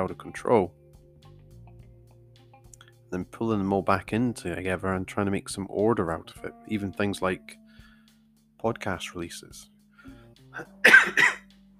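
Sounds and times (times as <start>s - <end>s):
speech: 0.0s - 0.8s, 3.1s - 7.6s, 8.6s - 9.7s, 10.6s - 11.4s
dry coughs: 10.6s - 11.5s.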